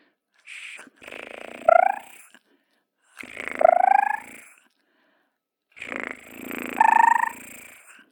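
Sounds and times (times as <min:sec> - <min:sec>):
cat purring with labored breathing through very narrow nasal passages: 0:00.5 - 0:02.4, 0:03.1 - 0:04.6, 0:05.8 - 0:08.1.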